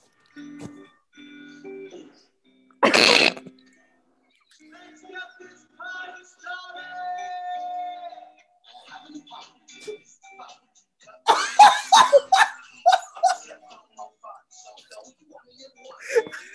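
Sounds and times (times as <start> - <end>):
comic fart sound effects played by smart speaker: 2.8 - 3.5
laughter: 11.3 - 14.2.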